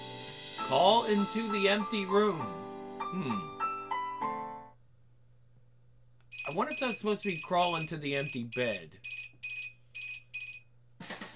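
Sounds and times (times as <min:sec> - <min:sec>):
speech: 0:00.7 - 0:03.6, 0:06.5 - 0:09.1
phone alarm beeping: 0:06.3 - 0:10.7.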